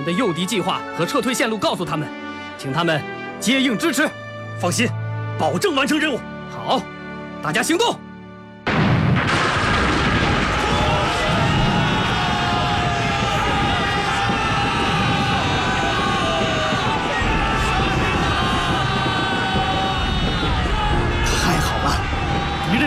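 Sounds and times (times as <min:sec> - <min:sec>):
speech: 0:00.0 - 0:08.0
firecrackers set off in tin buckets on a mountainside near Shaoshan China: 0:09.2 - 0:20.9
crowd yelling and shouting: 0:10.0 - 0:22.8.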